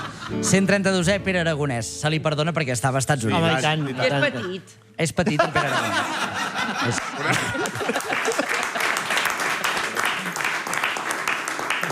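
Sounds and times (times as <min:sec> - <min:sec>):
laughter: 0:00.0 - 0:00.8, 0:03.2 - 0:10.8
speech: 0:00.3 - 0:08.0
crowd applauding: 0:06.1 - 0:11.8.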